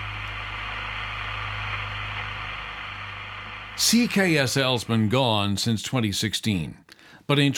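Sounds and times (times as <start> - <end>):
AM radio static on an empty frequency: 0.0 - 5.2
low constant hum: 0.0 - 5.8
speech: 3.8 - 7.5.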